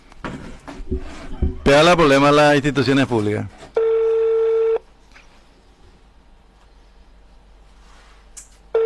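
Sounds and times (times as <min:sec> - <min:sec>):
speech: 0:00.9 - 0:03.6
electronic telephone tone of a call being placed: 0:03.8 - 0:04.8.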